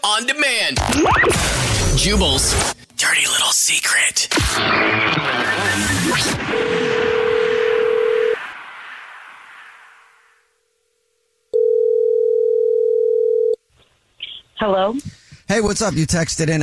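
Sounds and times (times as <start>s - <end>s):
speech: 0.0s - 7.1s, 14.6s - 16.6s
noisy burst: 0.8s - 3.5s, 4.3s - 10.9s
telephone dial tone: 7.0s - 8.4s, 11.6s - 13.6s.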